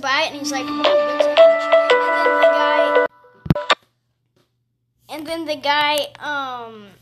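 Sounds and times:
speech: 0:00.0 - 0:01.2, 0:05.3 - 0:07.0
phone ringtone for an incoming call: 0:00.4 - 0:03.8.

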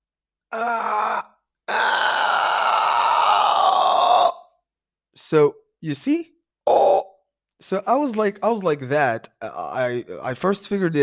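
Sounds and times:
speech: 0:00.5 - 0:01.3, 0:05.2 - 0:06.4, 0:07.6 - 0:11.0
person grunting in imitation of stretching the body: 0:00.5 - 0:04.4
long strained moan imitating stretching the body: 0:00.5 - 0:04.5.

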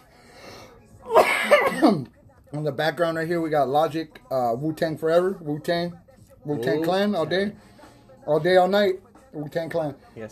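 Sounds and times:
person coughing: 0:01.1 - 0:02.1
speech: 0:01.8 - 0:10.2.

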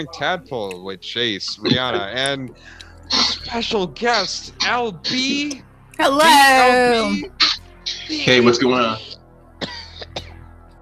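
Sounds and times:
speech: 0:00.0 - 0:07.4, 0:08.1 - 0:09.1
laughter: 0:00.0 - 0:10.2
short sharp cough close to the microphone: 0:01.3 - 0:02.8, 0:09.6 - 0:10.3.

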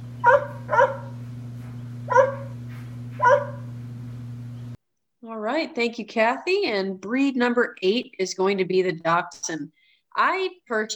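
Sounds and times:
low steady hum: 0:00.0 - 0:04.8
Golden Retriever-Poodle mix dog barking: 0:00.2 - 0:01.2, 0:02.1 - 0:02.6, 0:03.2 - 0:03.7
speech: 0:05.4 - 0:10.9.

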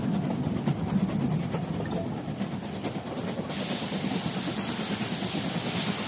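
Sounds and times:
train rumbling heard from the engine room: 0:00.0 - 0:06.0
steam billowing out of a train engine: 0:02.5 - 0:06.0.

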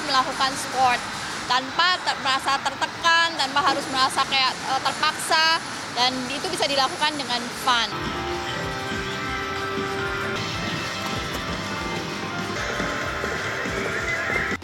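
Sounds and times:
speech: 0:00.1 - 0:08.2
horse hooves clip-clop from a machine-driven horse-riding simulator: 0:08.0 - 0:14.6.

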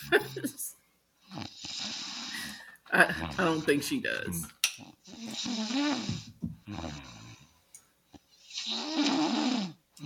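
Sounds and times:
loud snoring with a throaty rasping rattle: 0:01.3 - 0:03.7, 0:04.8 - 0:07.5, 0:08.4 - 0:10.0
speech: 0:03.0 - 0:04.6.

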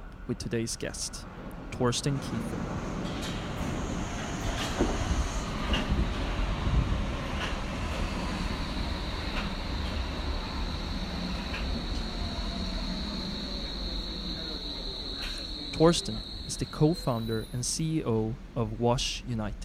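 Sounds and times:
metro train rumbling: 0:00.0 - 0:19.6
speech: 0:00.3 - 0:02.9, 0:15.8 - 0:19.6
rail clicks: 0:01.4 - 0:17.5
high electric whine: 0:04.4 - 0:18.0.

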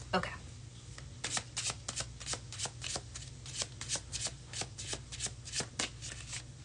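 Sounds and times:
speech: 0:00.1 - 0:00.4
tarot card deck being shuffled: 0:01.2 - 0:06.4.

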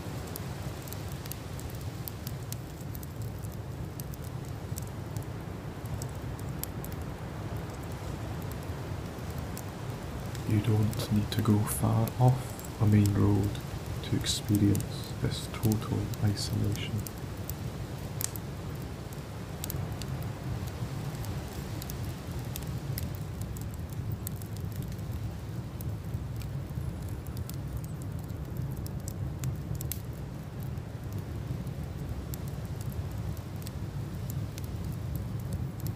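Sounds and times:
campfire crackling: 0:00.0 - 0:35.9
campfire pops and snaps: 0:00.0 - 0:35.9
low continuous rumble: 0:00.0 - 0:35.9
speech: 0:10.6 - 0:17.2.

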